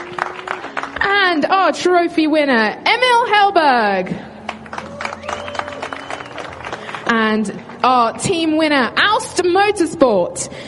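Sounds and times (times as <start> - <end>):
crowd applause at a motorsport race awards ceremony: 0.0 - 1.1, 4.4 - 7.9
speech: 1.3 - 4.3, 7.3 - 10.6.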